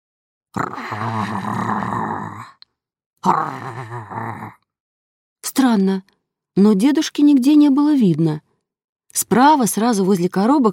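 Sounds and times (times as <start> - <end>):
speech: 0.5 - 2.6, 3.2 - 4.6, 5.4 - 8.4, 9.1 - 10.7
person imitating loud snoring in an attic: 0.6 - 2.6, 3.2 - 4.6.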